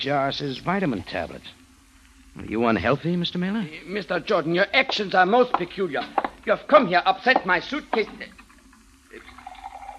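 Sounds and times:
speech: 0:00.0 - 0:01.6, 0:02.4 - 0:08.4
water pouring into a glass: 0:08.5 - 0:09.9.

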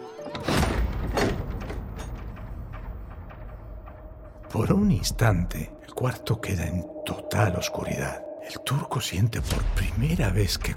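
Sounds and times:
door creaking open with a mechanical rattle: 0:00.1 - 0:04.0
door thudding shut: 0:00.3 - 0:03.2
speech: 0:04.6 - 0:10.7.

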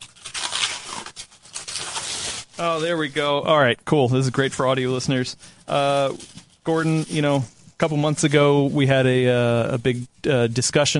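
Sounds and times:
tape ripping off the packaging of a brand-new product: 0:00.0 - 0:03.0
speech: 0:02.6 - 0:10.9.

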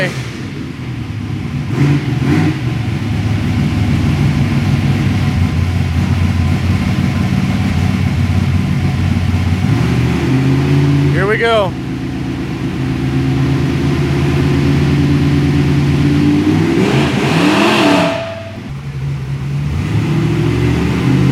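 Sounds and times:
speech: 0:00.0 - 0:00.3
car engine revving as throttle response is tested: 0:00.0 - 0:21.2.

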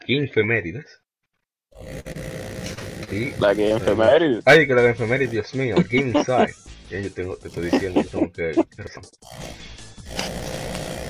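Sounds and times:
speech: 0:00.1 - 0:01.0, 0:01.7 - 0:02.3, 0:03.1 - 0:10.4
rough rasping snore: 0:01.7 - 0:06.4, 0:07.4 - 0:08.2, 0:09.2 - 0:11.0
laughter: 0:03.4 - 0:04.4, 0:05.2 - 0:06.6, 0:07.4 - 0:08.8.

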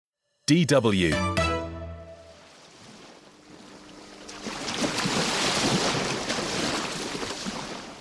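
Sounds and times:
speech: 0:00.5 - 0:01.4
Atlantic Ocean waves hitting the coast of a fishing village in southeast Nigeria: 0:02.2 - 0:07.9.

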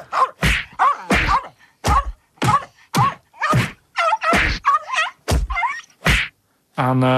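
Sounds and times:
heavy punching thuds sound effect: 0:00.0 - 0:04.6, 0:05.3 - 0:06.3
speech: 0:06.8 - 0:07.1.

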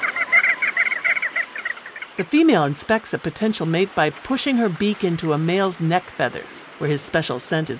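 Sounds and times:
crested auklet nasal honking calls: 0:00.0 - 0:02.8
speech: 0:02.2 - 0:07.7.

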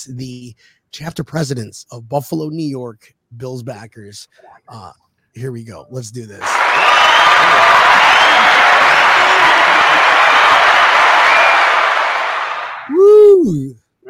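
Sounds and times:
speech: 0:00.0 - 0:08.7, 0:13.4 - 0:14.0
crowd applause and cheering: 0:06.4 - 0:13.4
single voice giving a short pitched shout: 0:12.9 - 0:14.0.

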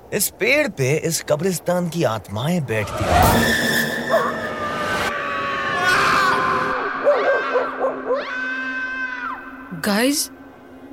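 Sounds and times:
speech: 0:00.1 - 0:04.2, 0:09.8 - 0:10.4
dense ghostly background: 0:02.8 - 0:10.9
eerie wailing cry with sobbing and moaning: 0:02.9 - 0:09.7.

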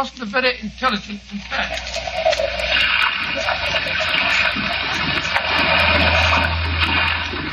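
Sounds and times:
speech: 0:00.0 - 0:06.1
rough sea heard from a small fishing boat: 0:01.6 - 0:07.5.

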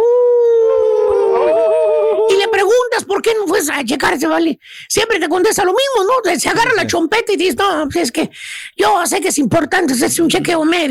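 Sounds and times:
person imitating a wolf howl: 0:00.0 - 0:02.9
speech: 0:03.2 - 0:10.8
breathy bursts: 0:08.3 - 0:08.8.

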